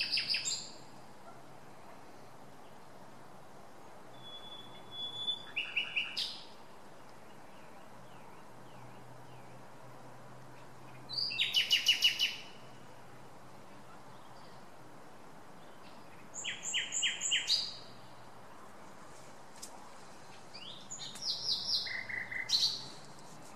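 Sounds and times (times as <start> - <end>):
common nightingale Luscinia megarhynchos song: 0.0 - 23.5.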